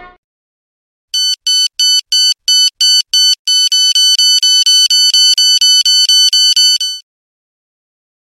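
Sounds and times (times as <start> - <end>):
loud alarm ringtone: 1.2 - 7.0.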